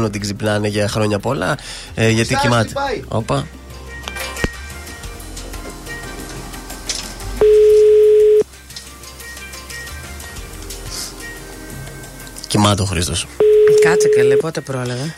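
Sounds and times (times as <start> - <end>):
speech: 0.0 - 3.6, 12.6 - 15.1
telephone ringback tone of an unanswered call: 7.4 - 8.4, 13.4 - 14.6.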